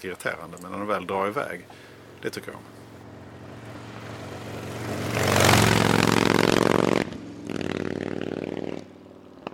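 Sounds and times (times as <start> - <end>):
speech: 0.0 - 2.8
motorcycle engine revving and idling: 1.7 - 9.5.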